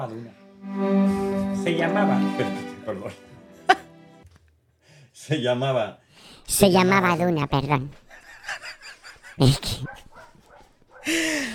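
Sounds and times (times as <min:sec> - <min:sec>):
speech: 0:00.0 - 0:03.8, 0:05.2 - 0:08.0, 0:09.4 - 0:10.0
laughter: 0:08.1 - 0:09.8
dogs barking at window: 0:09.8 - 0:11.1.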